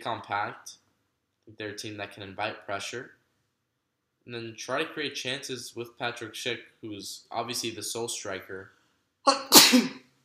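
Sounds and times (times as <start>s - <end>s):
speech: 0.0s - 0.8s, 1.5s - 3.2s, 4.2s - 10.0s
single loud sneeze: 9.3s - 10.1s.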